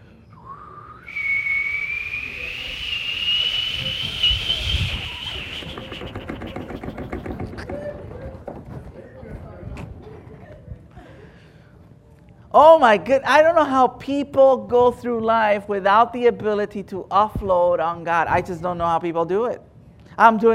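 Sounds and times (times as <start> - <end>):
pressure cooker whistling: 0.5 - 6.9
pressure cooker steam hissing: 1.1 - 7.6
speech: 12.6 - 20.5.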